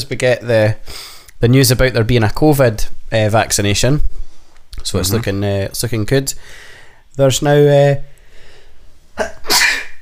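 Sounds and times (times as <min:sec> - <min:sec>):
speech: 0:00.0 - 0:04.2, 0:04.8 - 0:08.1, 0:09.2 - 0:09.7
loud human sneeze: 0:09.2 - 0:09.9.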